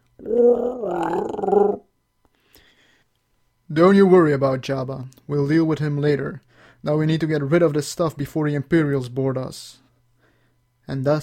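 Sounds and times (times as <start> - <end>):
Wookiee growling: 0.2 - 1.8
speech: 0.2 - 1.8, 3.7 - 9.8, 10.9 - 11.2.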